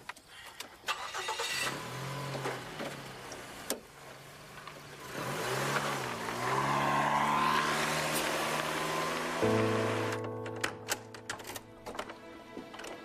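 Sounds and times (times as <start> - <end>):
car engine starting: 0.9 - 12.2.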